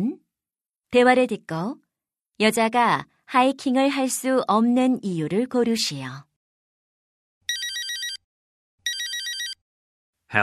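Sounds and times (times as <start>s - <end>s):
speech: 0.9s - 1.8s, 2.4s - 6.3s
telephone ringing with electronic trill: 7.5s - 9.6s.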